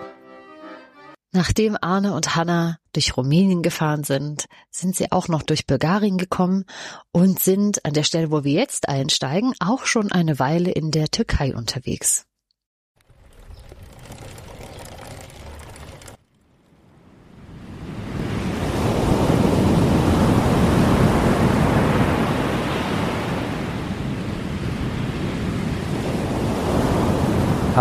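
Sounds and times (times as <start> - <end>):
speech: 1.4 - 12.3
Black Sea surf breaking on a rough coast: 13.0 - 27.8
wind noise on a rough coast: 16.9 - 27.8.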